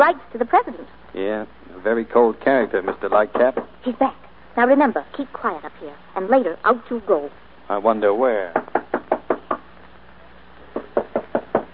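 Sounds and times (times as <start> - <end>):
speech: 0.0 - 8.7
sharp knocking on a door: 3.3 - 3.8, 8.5 - 9.7, 10.7 - 11.7.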